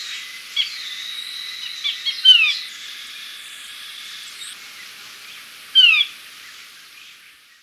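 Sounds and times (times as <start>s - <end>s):
chestnut-breasted chlorophonia calling in Ecuador: 0.0s - 4.6s, 5.8s - 6.1s.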